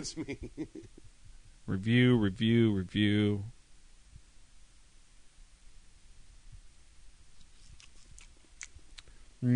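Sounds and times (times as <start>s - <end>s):
speech: 0.0s - 1.1s, 1.7s - 3.6s
crunchy chewing of cookies: 7.4s - 9.1s.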